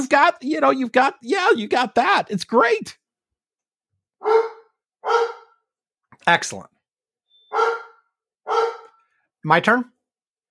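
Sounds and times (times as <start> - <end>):
speech: 0.0 - 3.0, 4.2 - 5.4, 6.2 - 6.7, 7.5 - 7.8, 9.4 - 9.9
dog barking: 4.2 - 5.6, 7.5 - 9.0.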